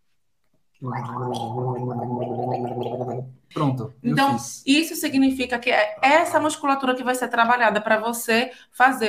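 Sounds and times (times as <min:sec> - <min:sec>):
gargling with water: 0:00.8 - 0:03.4
speech: 0:00.8 - 0:09.0.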